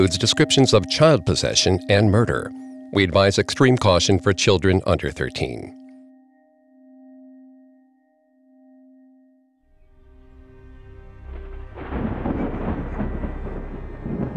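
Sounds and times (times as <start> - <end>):
speech: 0.0 - 5.8
soft sustained tone: 0.0 - 14.3
rain in a winter storm: 10.2 - 14.3
low rumbling thunder in a winter storm: 10.7 - 14.3
rushing wind in a winter storm: 11.1 - 14.3.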